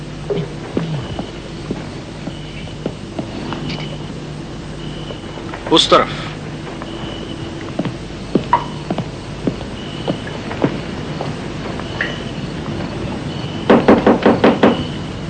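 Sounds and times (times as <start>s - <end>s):
steady low hum: 0.0s - 15.2s
speech: 5.7s - 6.2s
police knocking on a door: 13.7s - 14.9s.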